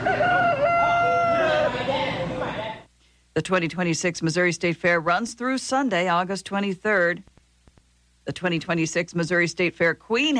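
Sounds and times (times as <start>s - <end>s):
rooster crowing: 0.0s - 2.3s
murmur of crowd noise: 0.0s - 2.9s
speech: 3.4s - 7.3s, 8.2s - 10.3s.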